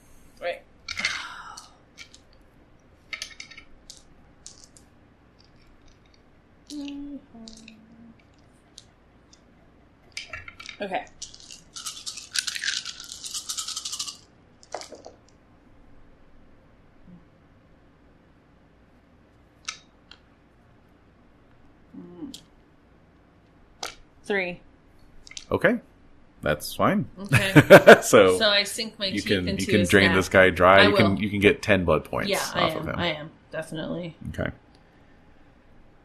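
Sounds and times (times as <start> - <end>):
ten dice clattering and rolling: 3.1 - 4.9, 10.2 - 15.3
speech: 10.8 - 11.2, 24.3 - 24.6, 25.5 - 34.6
laughter: 27.3 - 28.4.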